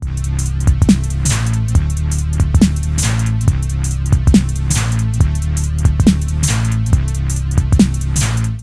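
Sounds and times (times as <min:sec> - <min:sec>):
drum machine shuffle rhythm: 0:00.0 - 0:08.6.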